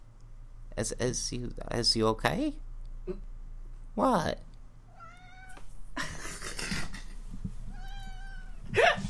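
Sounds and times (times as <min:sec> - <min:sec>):
speech: 0:00.8 - 0:03.3, 0:04.0 - 0:04.5
female cat meowing and yowling: 0:04.9 - 0:05.6, 0:07.7 - 0:08.7.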